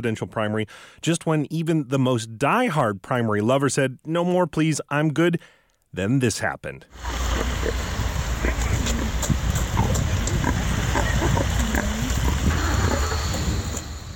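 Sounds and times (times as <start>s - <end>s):
speech: 0.0s - 8.0s
steady hissing background: 6.9s - 14.1s
600-pound pig grunting and squealing arriving at a polling place in Pelham, New Hampshire: 7.0s - 14.1s.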